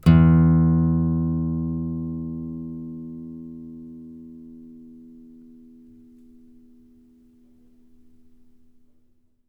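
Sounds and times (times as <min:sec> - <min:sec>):
ostinato bass: 0:00.0 - 0:05.6.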